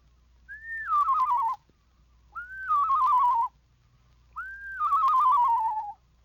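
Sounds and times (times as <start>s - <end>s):
person whistling an imitation of a screech owl's song: 0.5s - 1.6s, 2.4s - 3.5s, 4.4s - 6.0s.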